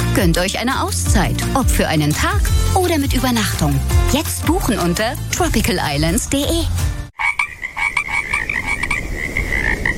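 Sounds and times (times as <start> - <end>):
speech: 0.2 - 7.0
chorus of frogs croaking: 7.2 - 9.9.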